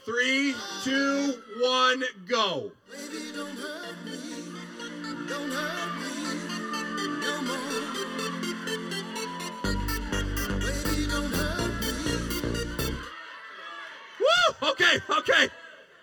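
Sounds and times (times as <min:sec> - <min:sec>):
speech: 0:00.0 - 0:04.3, 0:14.6 - 0:15.6
dance pop song with synth melody, four-on-the-floor bass beat and hi-hats: 0:02.9 - 0:13.1.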